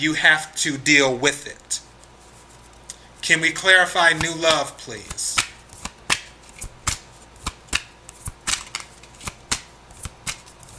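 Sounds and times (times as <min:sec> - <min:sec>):
speech: 0:00.0 - 0:01.9, 0:03.2 - 0:05.4
tarot cards being shuffled by hand: 0:04.1 - 0:10.7.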